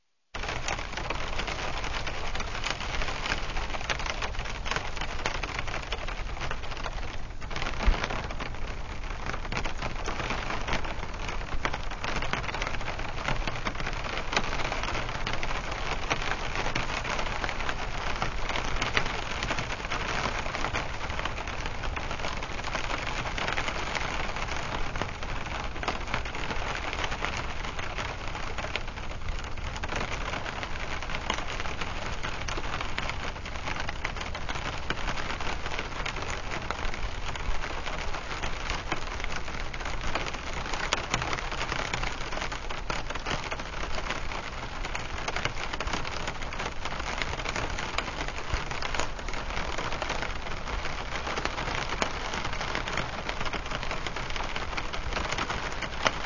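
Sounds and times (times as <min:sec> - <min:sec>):
rain ambience: 0:00.0 - 0:56.2.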